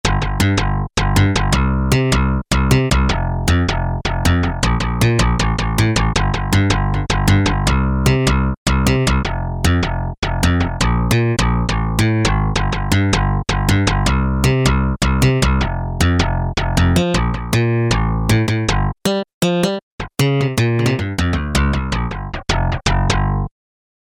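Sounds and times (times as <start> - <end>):
Peavey DPM Spectrum Bass synth bass: 0.0 - 19.2, 20.0 - 23.5.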